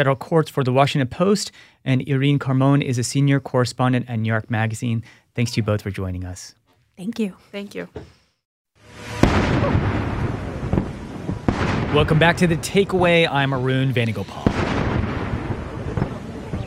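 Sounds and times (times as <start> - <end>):
speech: 0.0 - 8.2, 11.9 - 14.6
cannon fire of a 21-gun salute greeting a president arriving in India: 9.0 - 16.6.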